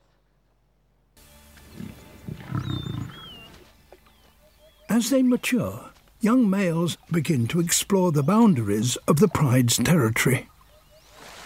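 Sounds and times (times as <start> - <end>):
lion roaring with deep rumbling growls: 1.6 - 3.6
speech: 5.0 - 10.5.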